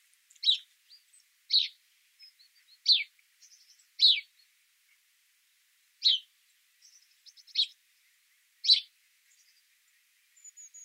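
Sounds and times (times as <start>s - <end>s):
house sparrow Passer domesticus chirping: 0.3s - 4.4s, 6.0s - 7.8s, 8.6s - 9.6s, 10.4s - 10.8s
faint bird twittering: 0.3s - 5.0s, 6.0s - 10.8s.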